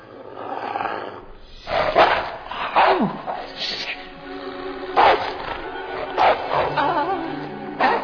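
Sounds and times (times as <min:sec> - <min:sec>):
dog growling: 0:00.0 - 0:08.0
dog barking: 0:01.5 - 0:04.2, 0:04.9 - 0:07.0, 0:07.8 - 0:08.0.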